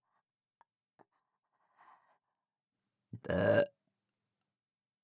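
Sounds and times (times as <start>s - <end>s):
mouth clicks: 3.2s - 3.7s
person burping: 3.2s - 3.7s
speech: 3.3s - 3.7s.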